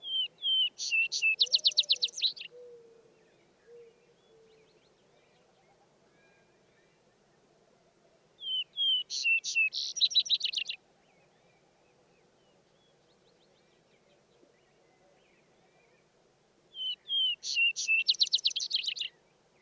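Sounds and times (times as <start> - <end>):
vesper sparrow song with trill: 0.0 - 2.7, 8.4 - 10.8, 16.8 - 19.6.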